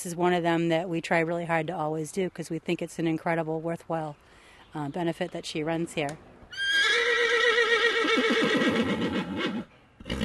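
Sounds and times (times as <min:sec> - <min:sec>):
speech: 0:00.0 - 0:06.6, 0:08.2 - 0:10.2
horse whinnying: 0:06.5 - 0:10.2
horse snorting: 0:08.4 - 0:10.2.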